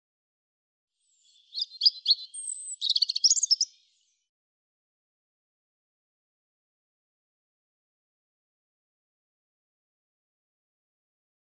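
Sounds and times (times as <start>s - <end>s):
European robin song: 1.0s - 4.2s.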